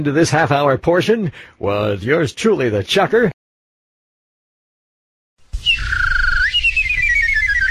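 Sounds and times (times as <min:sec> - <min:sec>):
speech: 0:00.0 - 0:03.3
kissing bird call: 0:05.6 - 0:07.6.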